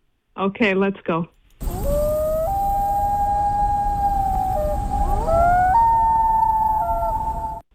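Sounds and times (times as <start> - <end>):
speech: 0.4 - 1.4
common loon wailing call: 1.6 - 7.7
low rumbling background: 1.6 - 7.7.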